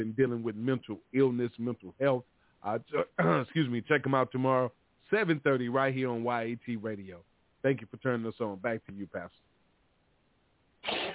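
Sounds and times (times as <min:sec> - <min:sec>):
speech: 0:00.0 - 0:09.5
person sneezing: 0:02.9 - 0:03.6, 0:10.8 - 0:11.1.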